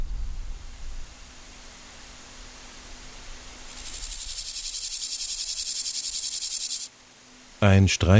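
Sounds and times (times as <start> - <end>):
grasshoppers chirping at night: 3.4 - 6.9
speech: 7.6 - 8.1.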